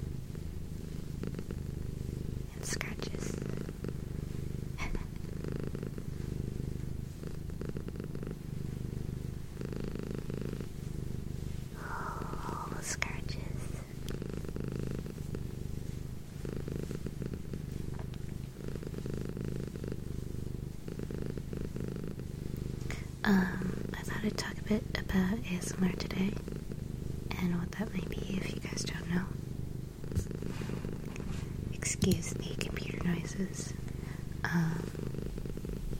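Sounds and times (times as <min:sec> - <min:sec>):
cat purring while lying on a lap: 0:00.0 - 0:35.9
speech: 0:24.7 - 0:26.4, 0:27.4 - 0:29.4, 0:32.0 - 0:33.8, 0:34.5 - 0:35.0.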